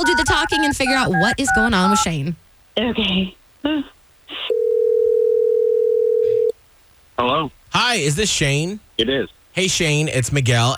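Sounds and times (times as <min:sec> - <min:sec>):
phone line ringing with an electronic tone: 0:00.0 - 0:02.1, 0:04.5 - 0:06.5
speech: 0:00.2 - 0:04.4, 0:07.2 - 0:10.7.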